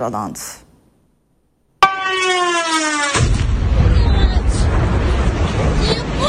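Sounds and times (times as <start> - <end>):
air raid siren wailing in a Ukrainian city during missile and drone strikes: 1.8 - 6.2
heavy continuous rumbling noise of explosions in Ukrainian cities: 3.2 - 6.2.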